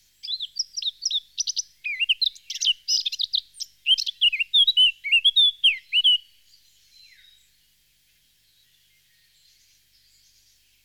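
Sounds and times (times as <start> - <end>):
Eurasian blackcap singing fluty whistled phrases: 0.2 - 6.3.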